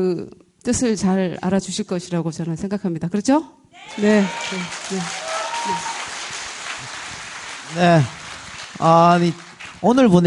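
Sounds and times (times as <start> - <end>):
speech: 0.0 - 5.9, 7.7 - 8.2, 8.8 - 10.2
audience applause: 3.8 - 10.2.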